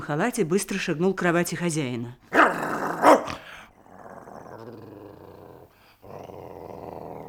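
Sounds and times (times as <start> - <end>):
speech: 0.1 - 2.6
dog snarling: 2.3 - 7.2.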